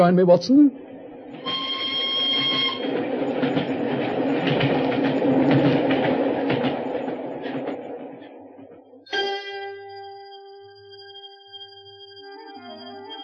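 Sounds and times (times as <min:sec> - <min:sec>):
speech: 0:00.0 - 0:01.4
single special train carriage thundering past at Canterbury station: 0:00.0 - 0:09.1
high whistling squeal: 0:01.0 - 0:05.8, 0:08.3 - 0:13.2.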